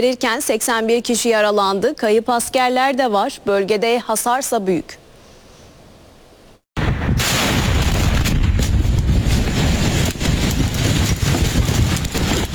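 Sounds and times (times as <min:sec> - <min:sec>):
speech: 0:00.0 - 0:05.0
explosions at a military facility storing fireworks material: 0:06.8 - 0:12.5
sharp bangs: 0:06.8 - 0:12.5.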